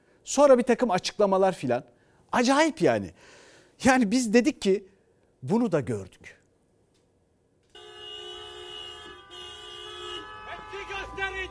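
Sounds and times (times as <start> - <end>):
speech: 0.2 - 6.4
car horns honking: 7.7 - 11.5.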